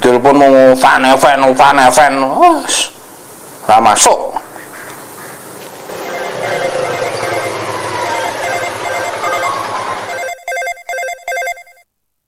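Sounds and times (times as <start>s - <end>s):
speech: 0.2s - 3.0s, 3.7s - 4.4s
telephone ringing with a buzzy electronic trill: 5.8s - 11.9s.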